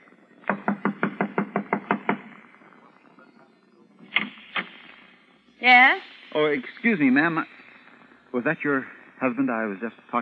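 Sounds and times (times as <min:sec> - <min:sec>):
sharp knocks on a wooden door: 0:00.5 - 0:02.3
speech: 0:05.6 - 0:07.6, 0:08.4 - 0:10.2.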